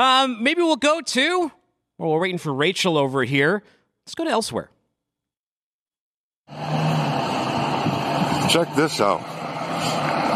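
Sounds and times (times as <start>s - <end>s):
speech: 0.0s - 4.8s, 8.5s - 10.1s
convoy of heavy trucks carrying nuclear waste rolling through a neighborhood: 6.5s - 10.3s.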